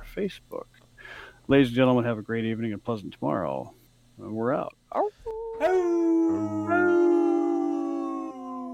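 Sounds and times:
speech: 0.2 - 6.9
wolf howling: 5.4 - 8.7.

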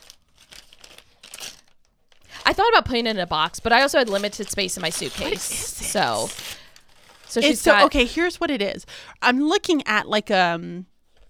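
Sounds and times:
gift wrapping paper torn and crinkled open: 0.0 - 2.5, 3.7 - 8.1
speech: 2.5 - 6.6, 7.3 - 10.9.

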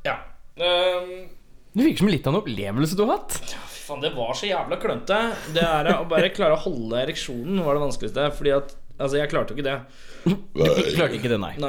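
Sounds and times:
speech: 0.0 - 11.6
person burping: 5.1 - 6.2, 10.3 - 11.4
person laughing: 5.1 - 7.9, 10.3 - 11.3.

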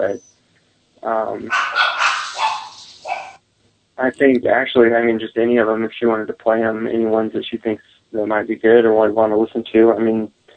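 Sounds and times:
speech: 0.0 - 0.3, 1.0 - 1.9, 4.0 - 10.4
dog barking: 1.4 - 3.4.

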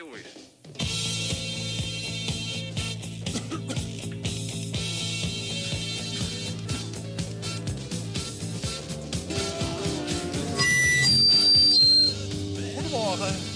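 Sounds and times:
gramophone record playing music on radio: 0.7 - 13.5
shrill whistling tone: 9.3 - 12.2.

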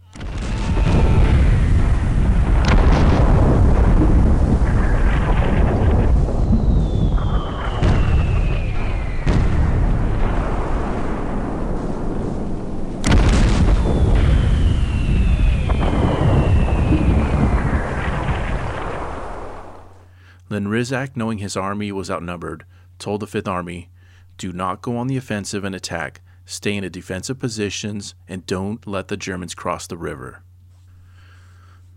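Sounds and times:
heavy artillery bombardment by 305 mm and 420 mm siege guns on a fortress: 0.0 - 20.0
high descending whistles: 0.2 - 2.1, 6.4 - 9.4, 13.8 - 18.0
speech: 20.6 - 30.5.

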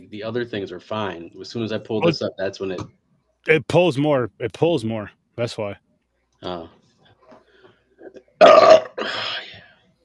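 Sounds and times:
speech: 0.0 - 5.8, 6.4 - 6.8
loud rumbling belch: 8.1 - 9.4.

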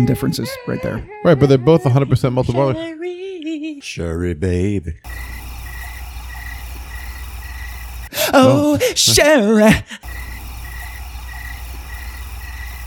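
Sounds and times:
speech: 0.0 - 5.3, 8.3 - 10.3
crickets chirping: 5.1 - 8.5, 10.0 - 12.8.

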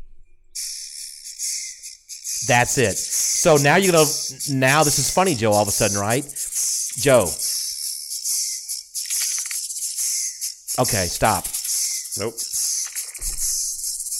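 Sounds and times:
Tesla pedestrian-warning snake rattle sound: 2.2 - 14.1
speech: 2.5 - 6.4, 7.0 - 7.5, 10.8 - 11.5, 12.2 - 12.5.

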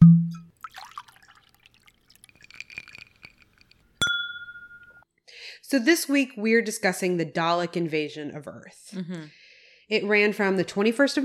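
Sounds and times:
glasses clinking in a toast: 0.3 - 5.0
liquid trickling: 0.5 - 4.1
speech: 5.7 - 11.2.

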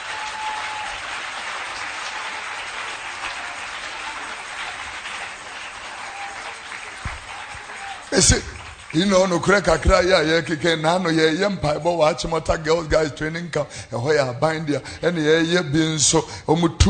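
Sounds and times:
crowd applauding: 0.0 - 11.1
speech: 8.2 - 16.8.

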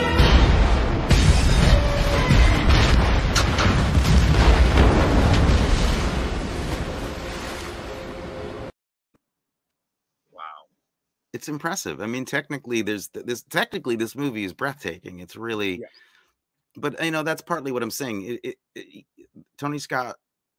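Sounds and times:
car exploding off a barge deck in a film: 0.2 - 7.2
crackling debris from a car explosion: 0.2 - 8.6
speech: 11.4 - 16.1, 16.8 - 20.2.

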